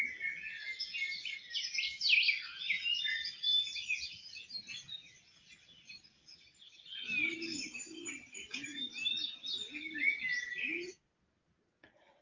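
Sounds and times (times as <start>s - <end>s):
several birds chirping together: 0.0s - 11.0s
soft repeated dove-like coo: 7.0s - 11.0s.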